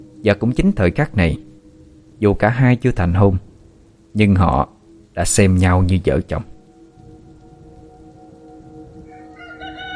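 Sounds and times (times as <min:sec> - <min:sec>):
speech: 0:00.2 - 0:01.5, 0:02.2 - 0:03.5, 0:04.2 - 0:06.5
rooster crowing at dawn: 0:09.0 - 0:09.9.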